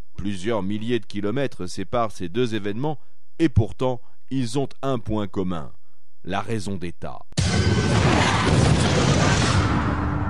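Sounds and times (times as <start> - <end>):
speech: 0.2 - 7.7
plane exploding: 7.4 - 10.2.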